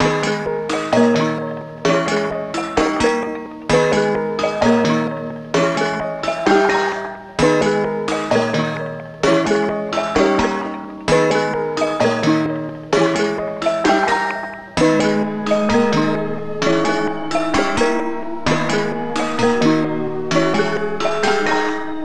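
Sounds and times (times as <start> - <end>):
130 BPM melody in G# minor: 0.2 - 22.0.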